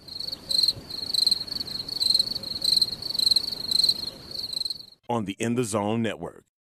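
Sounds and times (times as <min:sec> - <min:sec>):
chorus of crickets chirping: 0:00.0 - 0:05.0
speech: 0:05.1 - 0:06.5.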